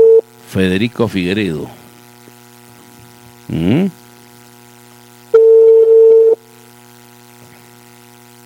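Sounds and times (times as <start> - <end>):
telephone ringing tone, call unanswered: 0.0 - 0.2, 5.4 - 6.4
speech: 0.5 - 1.8, 3.5 - 4.0
brief vocal sound: 3.5 - 4.0.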